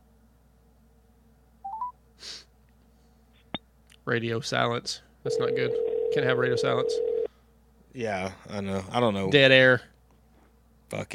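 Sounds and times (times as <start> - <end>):
phone keypad tones dialing a call: 1.7 - 1.9
soft breathy burst: 2.2 - 3.4
speech: 4.1 - 7.1, 8.0 - 9.9, 10.9 - 11.1.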